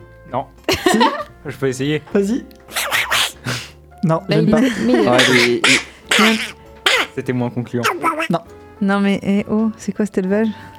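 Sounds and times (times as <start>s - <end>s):
speech: 0.3s - 2.6s, 3.4s - 6.5s, 7.2s - 10.7s
laughter: 0.7s - 1.3s, 4.3s - 7.1s
voice imitating cartoon duck quacking: 2.7s - 3.4s, 5.1s - 7.2s, 7.8s - 8.4s.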